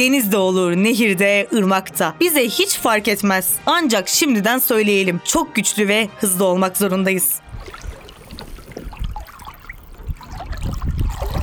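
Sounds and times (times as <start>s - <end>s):
speech: 0.0s - 7.8s
soft splashes: 7.4s - 11.4s
water sloshing around a canoe moving across open water: 7.4s - 11.4s.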